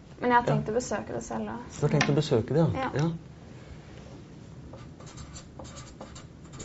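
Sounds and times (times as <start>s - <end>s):
steady low hum: 0.0s - 6.6s
speech: 0.2s - 3.3s
pen scratching across paper: 4.8s - 6.6s.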